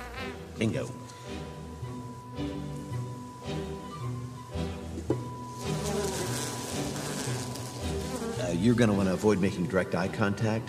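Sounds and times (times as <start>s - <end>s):
speech: 0.6s - 1.1s, 8.6s - 10.6s
honey bees buzzing at an open hive: 1.2s - 9.5s.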